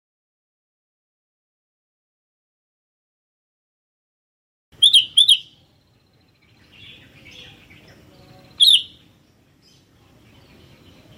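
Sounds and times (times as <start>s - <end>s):
Sooty-headed bulbul calling with sharp chirps: 4.8s - 11.1s
faint twittering: 4.8s - 11.1s.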